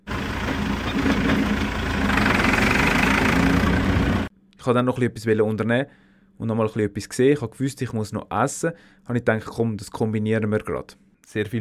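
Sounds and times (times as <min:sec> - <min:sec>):
old tractor engine running: 0:00.0 - 0:04.3
speech: 0:04.6 - 0:11.6.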